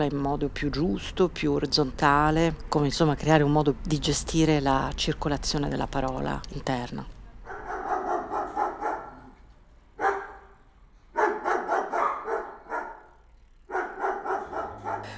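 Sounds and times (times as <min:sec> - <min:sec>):
speech: 0:00.0 - 0:07.2
dogs barking: 0:07.4 - 0:15.1.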